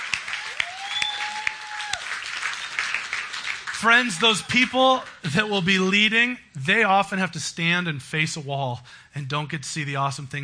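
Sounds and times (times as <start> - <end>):
crowd applauding: 0.0 - 5.4
speech: 3.8 - 10.4.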